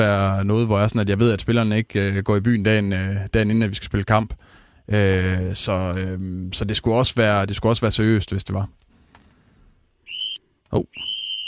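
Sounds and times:
speech: 0:00.0 - 0:08.8, 0:10.7 - 0:11.1
faint click: 0:08.8 - 0:09.4
referee-style whistle blast: 0:10.0 - 0:11.4.

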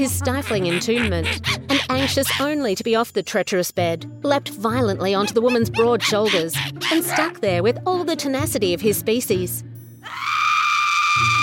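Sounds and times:
speech: 0:00.0 - 0:10.3
woman shrieking in terror: 0:10.0 - 0:11.4.

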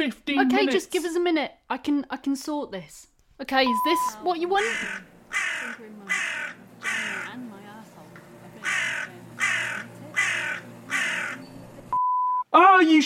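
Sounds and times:
speech: 0:00.0 - 0:07.6, 0:12.5 - 0:13.0
crow kept indoors cawing: 0:04.5 - 0:07.5, 0:08.6 - 0:11.6.

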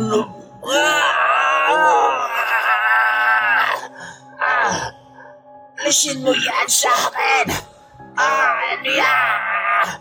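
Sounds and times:
anguished scream of a possessed person: 0:00.0 - 0:04.9, 0:08.2 - 0:09.9
speech: 0:00.1 - 0:01.0, 0:05.9 - 0:09.9.

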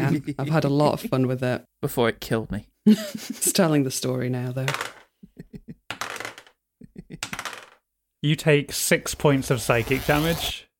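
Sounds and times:
speech: 0:00.1 - 0:05.6, 0:08.2 - 0:10.7
dice rolling on a table: 0:04.7 - 0:05.1, 0:05.9 - 0:06.6, 0:07.2 - 0:07.8.

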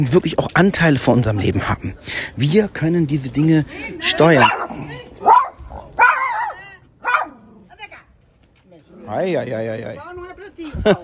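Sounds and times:
speech: 0:00.0 - 0:05.4, 0:09.1 - 0:11.0
Chihuahua barking: 0:04.4 - 0:07.6
laughter: 0:10.6 - 0:11.0.

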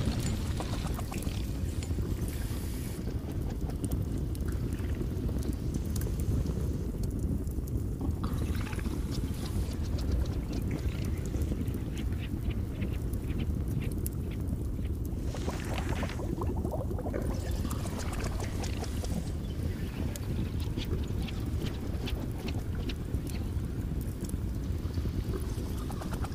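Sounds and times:
cauldron boiling and bubbling: 0:00.0 - 0:26.3.

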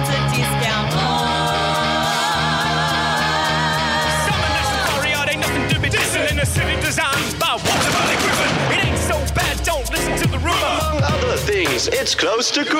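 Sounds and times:
sustained tonal music: 0:00.0 - 0:12.2
fireworks exploding in a barrage of cracks and bangs: 0:07.5 - 0:09.7
speech: 0:11.8 - 0:12.7.

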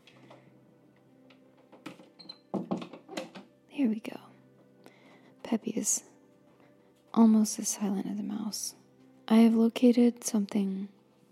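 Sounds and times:
door being handled and closed with rattle, clunks and thud: 0:01.6 - 0:03.5
speech: 0:03.8 - 0:04.2, 0:05.5 - 0:06.1, 0:07.2 - 0:11.0.

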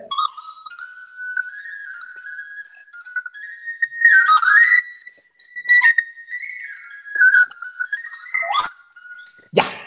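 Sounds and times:
song played live on a high breathy whistle-like instrument: 0:00.0 - 0:09.5.

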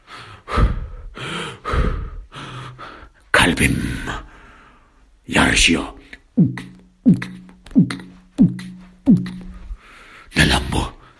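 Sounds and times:
deep heavy breaths with airy gasps: 0:00.0 - 0:03.3, 0:03.9 - 0:05.1, 0:08.1 - 0:11.1
speech: 0:03.5 - 0:04.3, 0:05.3 - 0:07.3.

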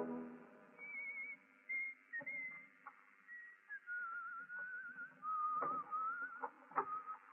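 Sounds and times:
person whistling a wavering tune: 0:00.8 - 0:07.3.

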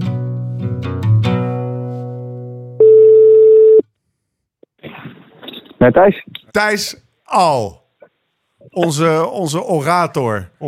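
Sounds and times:
telephone tone as a call is placed: 0:02.8 - 0:03.8
speech: 0:05.8 - 0:07.8, 0:08.8 - 0:10.6.

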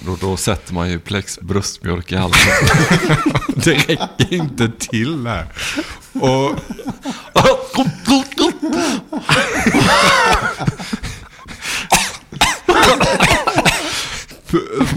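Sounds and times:
speech: 0:00.0 - 0:10.8
laughter: 0:02.3 - 0:11.6, 0:12.6 - 0:13.9
person coughing: 0:05.8 - 0:10.9, 0:11.8 - 0:14.9.

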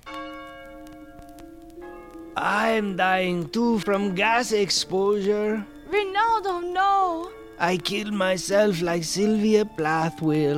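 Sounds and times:
bells ringing with a resonant hum: 0:00.0 - 0:02.8
speech: 0:02.4 - 0:10.5.

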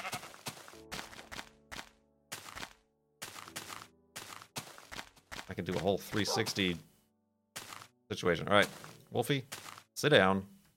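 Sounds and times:
brown sheep bleating: 0:00.0 - 0:00.4
speech: 0:05.5 - 0:06.9, 0:08.1 - 0:10.6.

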